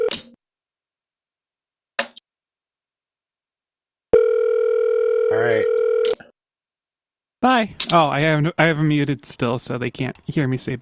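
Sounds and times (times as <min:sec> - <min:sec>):
telephone ringback on an outgoing call to a hotel: 0:04.2 - 0:06.1
speech: 0:07.4 - 0:10.7.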